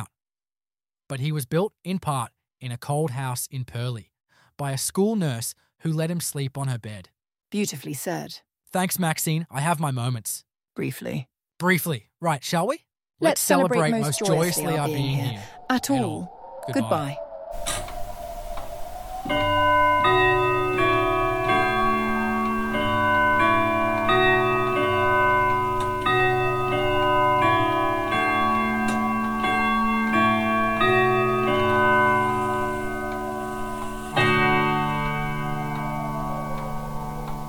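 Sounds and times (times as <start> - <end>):
speech: 1.1 - 17.8
clock tower bells ringing a slow resonant chime melody: 17.6 - 37.4.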